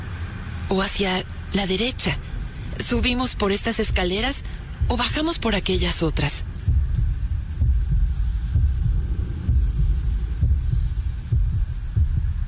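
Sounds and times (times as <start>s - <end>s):
dull rumbling hum: 0.0s - 12.4s
speech: 0.7s - 6.5s
deep heartbeat: 2.7s - 12.4s.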